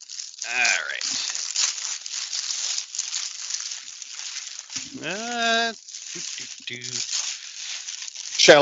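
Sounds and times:
gift wrapping paper crinkling and ripping around a box: 0.0 - 8.5
brief vocal sound and short voice fragments: 0.4 - 1.3, 4.9 - 7.1, 8.4 - 8.5
speech: 0.4 - 1.7, 5.0 - 7.2.

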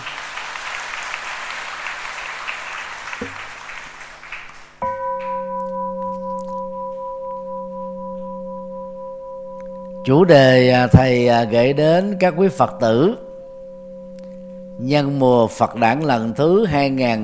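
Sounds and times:
audience clapping loudly: 0.0 - 5.4
sustained ringing tone: 4.8 - 17.2
speech: 10.0 - 13.2, 14.8 - 17.2.

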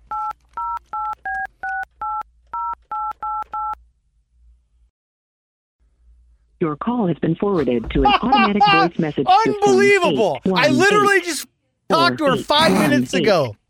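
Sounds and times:
cell phone keypad dual-pitched tones: 0.1 - 3.8
speech: 6.6 - 13.6
laughter: 8.0 - 10.0.

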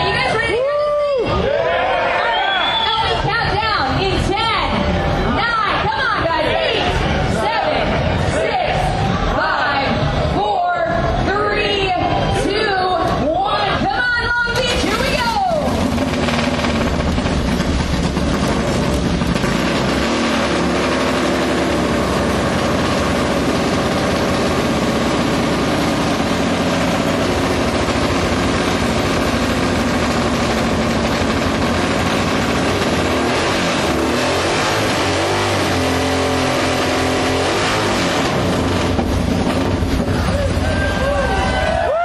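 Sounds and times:
voices: 0.0 - 15.9
vintage 1920 motorcycle engine starting and idling: 14.4 - 41.7.

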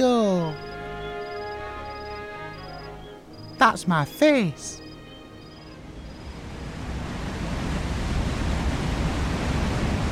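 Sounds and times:
speech: 3.6 - 4.8
rushing water at the top of a waterfall: 5.6 - 10.1.

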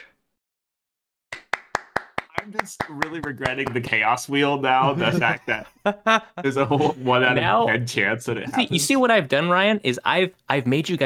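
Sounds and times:
single person clapping hands: 1.3 - 4.0
speech: 2.4 - 11.0
laughter: 4.6 - 8.8.

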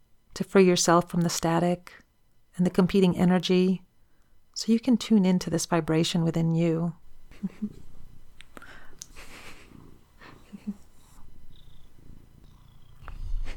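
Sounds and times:
speech: 0.4 - 2.0, 2.6 - 3.8, 4.6 - 7.8
soft breathy sounds: 7.8 - 13.5
pet cat purring: 9.0 - 13.5.

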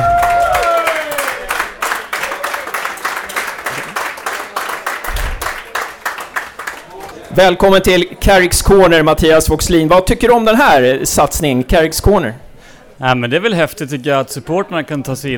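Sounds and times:
enthusiastic audience applause welcoming a guest: 0.0 - 7.2
speech: 7.4 - 12.4, 13.0 - 15.3.

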